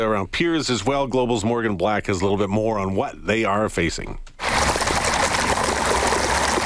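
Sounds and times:
speech: 0.0s - 4.3s
water gushing from a hose against flooding after heavy rain: 4.4s - 6.6s.

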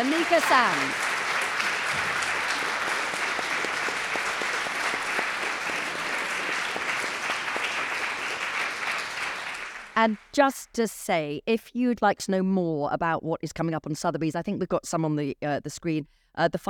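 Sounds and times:
speech: 0.0s - 1.1s, 10.0s - 16.6s
audience applause: 0.0s - 10.1s.

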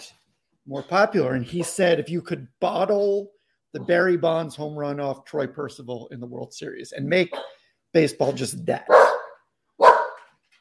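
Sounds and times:
speech: 0.7s - 9.2s
dog barking: 7.3s - 7.6s, 8.2s - 10.3s.

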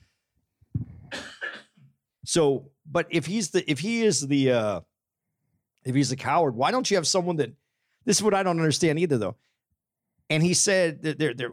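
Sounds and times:
harsh raspy throaty cough: 1.0s - 1.9s
speech: 2.3s - 4.9s, 5.8s - 9.5s, 10.3s - 11.5s.

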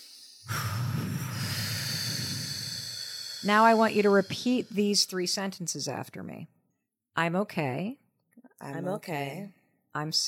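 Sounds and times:
deep breath during a calming exercise: 0.0s - 5.3s
speech: 3.4s - 6.6s, 7.2s - 8.0s, 8.6s - 10.2s.

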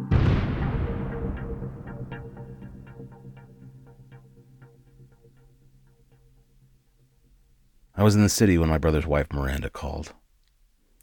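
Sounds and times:
loud explosion: 0.0s - 3.3s
deep rumble: 0.0s - 6.3s
speech: 8.0s - 10.2s.

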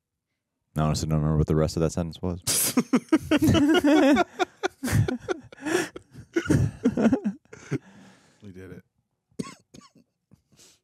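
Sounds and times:
speech: 0.8s - 5.4s
laughter: 2.5s - 7.9s
person coughing harshly: 2.5s - 7.9s, 9.4s - 10.0s
breathy exhale: 7.6s - 8.4s.

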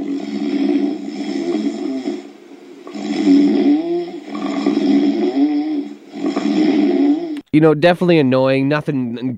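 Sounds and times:
man snoring loudly while asleep: 0.0s - 7.4s
speech: 7.6s - 9.3s.

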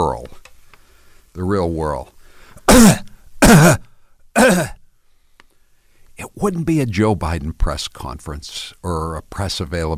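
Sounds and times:
speech: 0.0s - 0.4s, 1.4s - 3.9s, 6.4s - 9.9s
throat-clearing coughs at a press conference: 2.6s - 4.8s.

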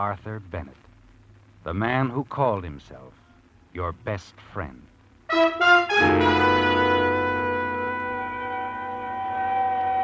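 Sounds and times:
speech: 0.0s - 0.9s, 1.6s - 4.9s, 5.6s - 6.7s
ambulance siren: 6.0s - 10.0s.

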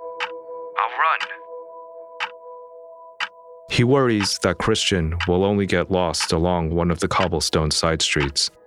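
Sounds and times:
speech: 0.8s - 1.4s, 3.7s - 8.6s
clock ticking: 4.1s - 4.5s, 5.2s - 7.4s, 8.2s - 8.5s.

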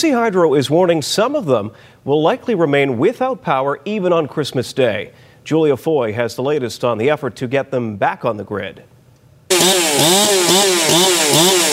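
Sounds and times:
speech: 0.0s - 8.9s, 9.5s - 11.7s
chainsaw cutting through wood: 9.5s - 11.7s.

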